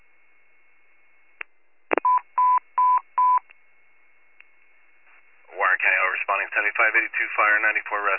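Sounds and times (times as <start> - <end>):
radio dispatch cancellation electronic beeps to fire and rescue units: 1.9 - 3.4
short burst of dispatch radio static: 5.6 - 8.1
speech: 6.9 - 8.1.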